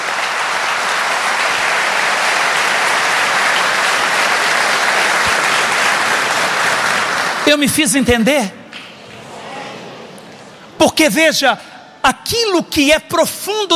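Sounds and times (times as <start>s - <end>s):
sustained applause from a large audience: 0.0s - 7.7s
speech: 7.5s - 8.6s, 10.9s - 13.7s.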